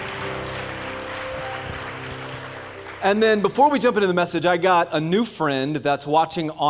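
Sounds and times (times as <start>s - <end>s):
audience applause: 0.0s - 4.3s
speech: 3.0s - 6.6s.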